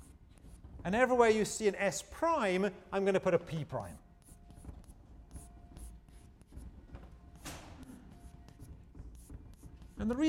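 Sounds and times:
scratchy writing on a board during a maths lecture: 0.0s - 1.1s, 3.4s - 10.2s
speech: 0.8s - 4.0s, 10.0s - 10.2s.

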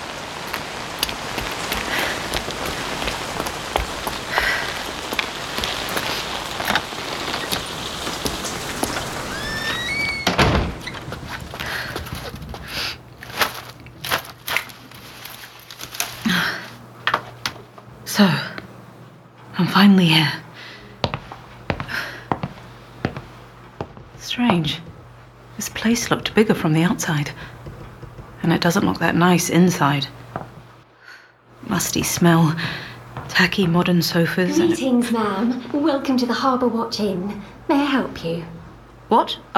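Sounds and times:
heavy rain pouring down: 0.0s - 16.7s
shuffling footsteps: 0.4s - 9.9s, 10.8s - 17.9s, 21.0s - 26.3s, 30.1s - 30.8s, 32.0s - 33.9s
creaks: 1.0s - 16.4s
door of a three-story Victorian house used as an inn banging shut: 9.0s - 11.5s
speech: 19.8s - 20.4s, 25.9s - 27.5s, 28.4s - 30.2s, 31.8s - 39.4s.

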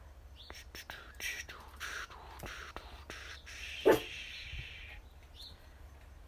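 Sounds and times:
soft whispery hiss: 0.0s - 6.2s
puppy barking: 3.8s - 4.1s.

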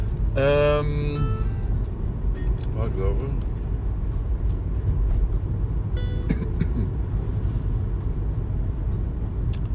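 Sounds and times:
car driving along the road, heard from inside: 0.0s - 9.7s
speech: 0.4s - 1.3s, 2.8s - 3.5s.

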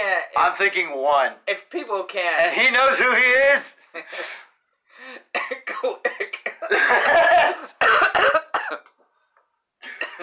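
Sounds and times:
speech: 0.2s - 4.4s, 5.0s - 8.9s, 9.9s - 10.2s
person coughing right on the microphone: 5.3s - 8.9s, 9.8s - 10.2s.

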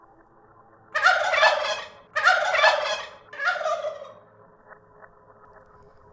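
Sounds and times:
turkey gobbling: 0.9s - 4.3s.

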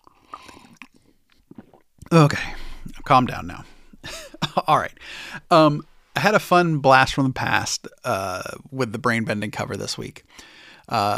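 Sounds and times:
person sipping tea with wet slurping mouth sounds: 0.0s - 1.9s
speech: 2.1s - 3.7s, 4.6s - 11.1s.

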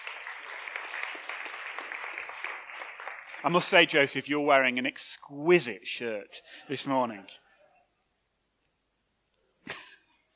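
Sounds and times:
audience applauding: 0.0s - 4.3s
speech: 3.4s - 7.4s.

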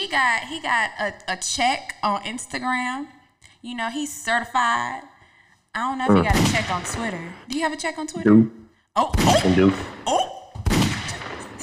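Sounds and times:
speech: 0.1s - 5.1s, 5.8s - 10.4s
person imitating gunfire with mouth-made bangs: 6.1s - 7.2s, 9.1s - 11.6s.

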